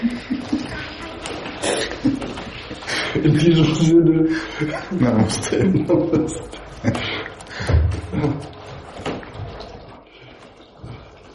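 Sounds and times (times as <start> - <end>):
laughter: 0.0 - 1.0, 1.6 - 8.5
toilet flushing: 0.0 - 11.3
speech: 3.1 - 7.1.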